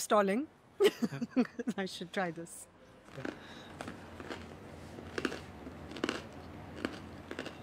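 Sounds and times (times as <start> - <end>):
speech: 0.0 - 3.9
someone biting into crusty bread: 3.1 - 7.6.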